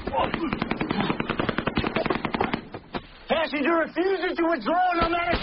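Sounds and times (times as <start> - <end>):
heavy automatic gunfire in a combat firefight: 0.2 - 2.8
speech: 3.6 - 5.4.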